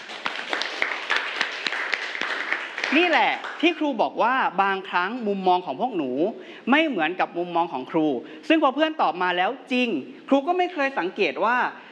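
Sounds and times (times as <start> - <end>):
children clapping in a classroom for a classmate: 0.0 - 3.7
speech: 2.9 - 11.8.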